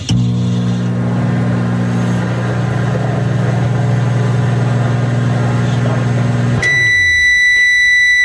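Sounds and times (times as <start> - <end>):
microwave oven humming: 0.0 - 8.2
high-pitched microwave oven beep: 6.6 - 8.2.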